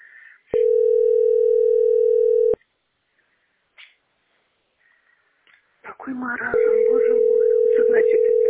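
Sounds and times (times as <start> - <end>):
steady telephone line tone on hold in a billing centre hotline queue: 0.6 - 2.6, 6.5 - 8.4
speech: 6.1 - 8.4.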